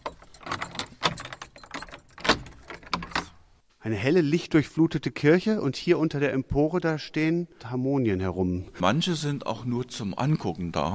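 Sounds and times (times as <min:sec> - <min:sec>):
large set of keys jangling and clinking: 0:00.0 - 0:03.4
church door lock being worked with a large key: 0:00.0 - 0:03.5
speech: 0:03.8 - 0:10.9.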